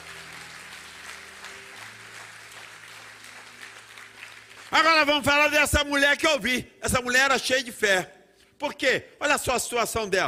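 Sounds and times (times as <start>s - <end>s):
large audience applause: 0.0s - 5.1s
speech: 4.7s - 10.2s.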